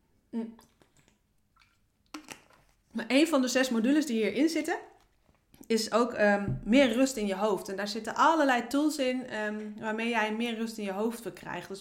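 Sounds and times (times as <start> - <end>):
speech: 0.3 - 0.7, 3.0 - 5.0, 5.7 - 11.7
faint wet mouth noises from sipping water: 0.4 - 2.8
soft gulping clicks: 0.5 - 2.7.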